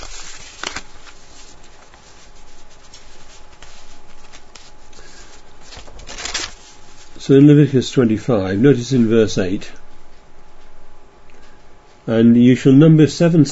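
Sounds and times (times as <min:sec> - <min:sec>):
paper notes being shuffled: 0:00.0 - 0:07.5
speech: 0:07.2 - 0:09.8, 0:12.1 - 0:13.5.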